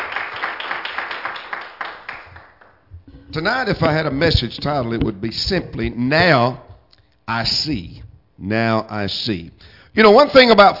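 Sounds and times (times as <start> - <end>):
audience clapping: 0.0 - 2.9
speech: 3.3 - 6.6, 7.3 - 10.7.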